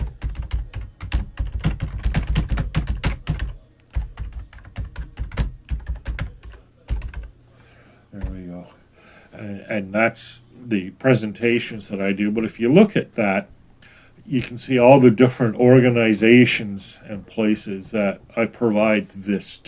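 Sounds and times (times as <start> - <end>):
typing on a computer keyboard while entering a web link: 0.0 - 7.3
speech: 9.7 - 13.6, 14.3 - 19.6.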